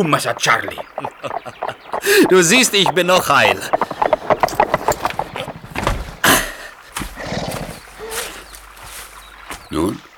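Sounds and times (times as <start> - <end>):
speech: 0.0 - 3.8
horse hoofbeats: 0.0 - 9.7
laughter: 0.4 - 3.9
scuffling movement: 2.0 - 6.2, 6.8 - 9.7.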